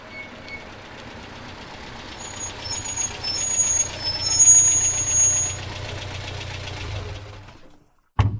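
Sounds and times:
car and flatbed truck engines rumbling and idling: 0.0 - 7.8
brief sharp thud: 8.2 - 8.3.

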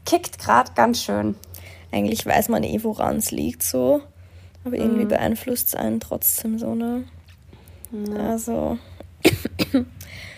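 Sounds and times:
speech: 0.1 - 7.2, 7.9 - 10.3
person coughing roughly: 9.2 - 9.9.

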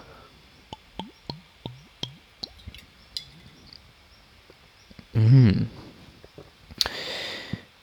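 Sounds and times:
person sipping and swallowing water: 0.7 - 3.5
speech: 5.2 - 5.8.

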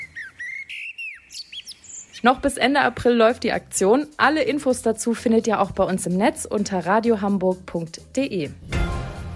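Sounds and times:
common blackbird singing: 0.0 - 2.6
speech: 2.2 - 8.8.

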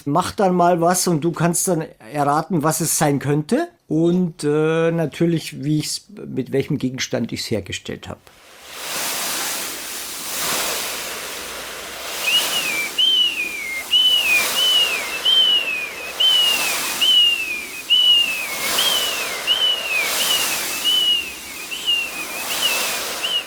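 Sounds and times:
speech: 0.0 - 8.5
foley imitation of sea waves whooshing: 8.3 - 23.4
short high whistled cries mimicking gulls: 12.2 - 23.4.

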